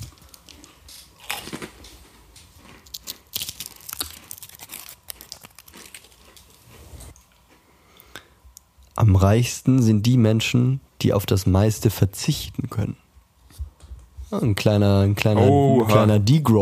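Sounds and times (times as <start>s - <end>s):
person crunching and chewing a fortune cookie: 0.0s - 7.4s
crinkling: 0.0s - 7.6s
speech: 9.0s - 13.0s, 14.3s - 16.6s.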